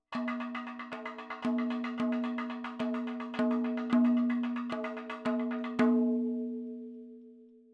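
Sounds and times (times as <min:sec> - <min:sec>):
madalam drum fills: 0:00.1 - 0:06.8.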